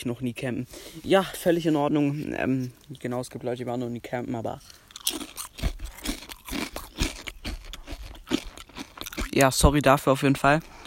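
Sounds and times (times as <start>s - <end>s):
speech: 0.0s - 5.2s, 9.4s - 10.8s
person eating crunchy food: 4.5s - 9.6s.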